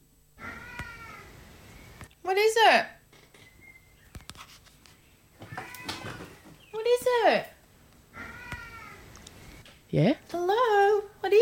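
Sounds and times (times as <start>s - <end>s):
male cat meowing: 0.4s - 1.3s, 5.4s - 6.4s, 8.1s - 9.1s
speech: 2.3s - 2.9s, 7.0s - 7.5s, 10.0s - 11.3s.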